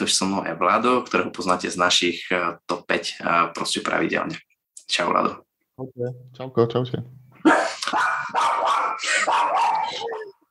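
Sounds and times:
speech: 0.0s - 10.1s
dog barking with loud yappy barks: 7.6s - 10.3s.

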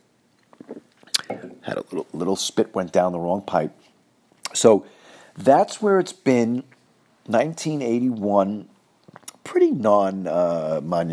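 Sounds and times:
person sipping and swallowing water: 0.4s - 1.6s
speech: 1.7s - 3.9s, 4.6s - 8.7s, 9.7s - 11.1s.

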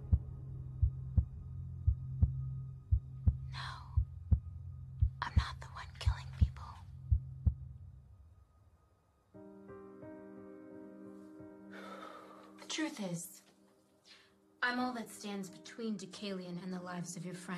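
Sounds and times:
heartbeat thumping: 0.0s - 7.8s
hushed whispers: 5.2s - 6.9s
speech: 13.0s - 13.4s, 14.7s - 17.5s.

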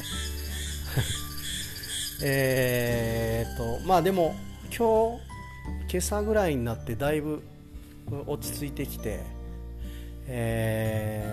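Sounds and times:
cicadas buzzing in a dense chorus: 0.0s - 6.1s
laughter: 0.5s - 1.5s
speech: 1.0s - 1.2s, 2.2s - 7.5s, 8.1s - 9.4s, 10.3s - 11.3s.

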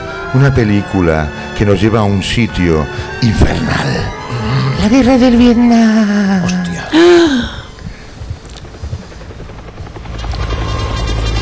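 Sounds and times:
speech: 0.3s - 7.6s
helicopter rotor blades thumping: 7.6s - 11.4s.

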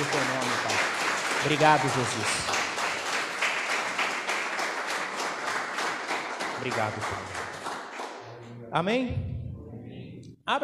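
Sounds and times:
audience applauding: 0.0s - 8.2s
speech: 1.4s - 2.5s, 6.6s - 7.4s, 8.7s - 9.3s, 10.5s - 10.6s.

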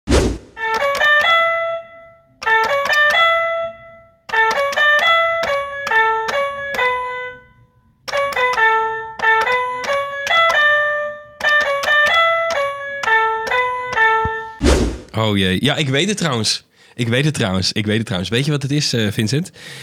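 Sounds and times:
cheap five-key toy piano playing a simple melody: 0.6s - 14.6s
speech: 15.2s - 19.8s.

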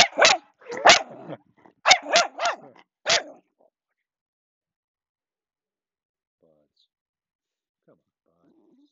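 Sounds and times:
dog barking sharply and agitatedly: 0.0s - 3.4s.

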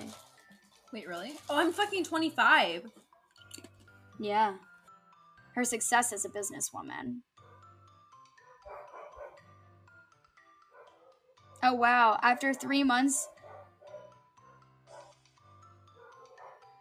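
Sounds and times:
speech: 0.9s - 3.6s, 4.2s - 4.7s, 5.6s - 7.3s, 11.6s - 13.4s
dogs barking and yelping: 8.4s - 9.5s, 10.6s - 11.5s, 12.4s - 15.2s, 15.9s - 16.7s.

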